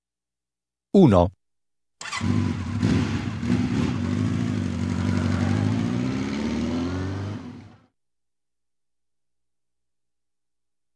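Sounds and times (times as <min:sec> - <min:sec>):
speech: 0:01.0 - 0:01.4, 0:02.2 - 0:02.7
motorcycle engine idling and revving: 0:02.0 - 0:07.9.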